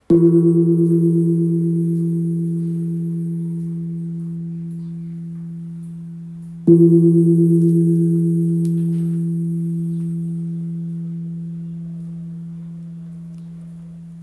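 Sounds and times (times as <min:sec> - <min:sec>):
Burmese gong in Mi: 0:00.0 - 0:14.2.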